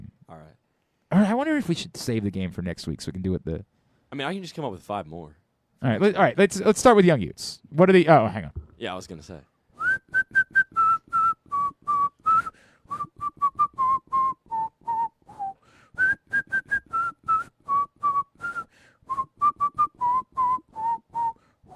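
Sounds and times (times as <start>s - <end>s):
speech: 1.2s - 9.5s
person whistling a tune: 9.8s - 21.7s.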